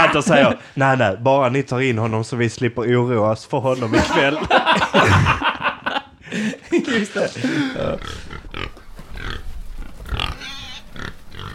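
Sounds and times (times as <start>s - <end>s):
laughter: 0.0s - 0.7s, 3.7s - 8.1s
speech: 0.1s - 5.5s, 6.3s - 8.3s
pig grunting, snorting and squealing: 7.4s - 11.5s.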